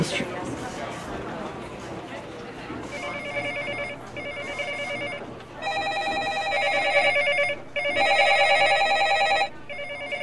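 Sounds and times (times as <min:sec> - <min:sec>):
murmuring chatter: 0:00.0 - 0:10.2
room noise: 0:00.0 - 0:10.2
office telephone ringing in electronic bursts: 0:02.9 - 0:10.2.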